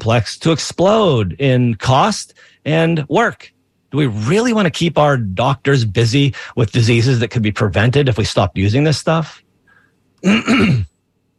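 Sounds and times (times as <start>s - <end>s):
speech: 0.0s - 9.4s, 10.2s - 10.9s
man clearing his throat: 10.2s - 11.0s.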